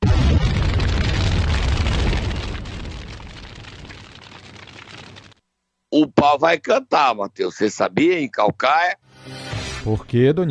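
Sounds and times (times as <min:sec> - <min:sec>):
massive MOAB bomb explosion with rolling crackling rumble: 0:00.0 - 0:05.4
speech: 0:06.0 - 0:10.4.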